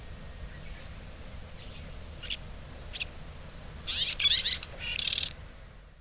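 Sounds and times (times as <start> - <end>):
steady low background noise: 0.0 - 5.9
red-rumped swallow calls in Hyogo: 1.6 - 5.4.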